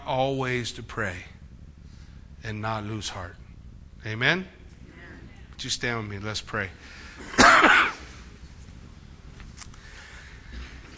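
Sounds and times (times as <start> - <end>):
speech: 0.1 - 1.4, 2.4 - 3.4, 4.0 - 4.6, 5.6 - 7.9
person coughing: 7.2 - 8.2.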